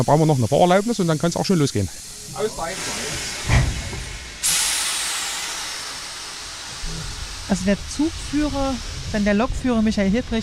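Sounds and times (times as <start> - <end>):
speech: 0.0 - 3.6, 7.5 - 10.4
steam locomotive hissing during shunting at a railway station: 0.0 - 10.4
metal clank: 2.8 - 4.8.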